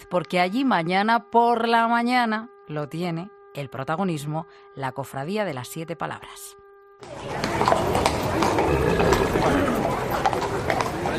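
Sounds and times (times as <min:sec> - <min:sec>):
speech: 0:00.1 - 0:10.0
horse hooves clip-clopping on a hard street in Valladolid during a Holy Week ride: 0:07.0 - 0:11.1
outdoor crowd murmuring: 0:07.0 - 0:11.1.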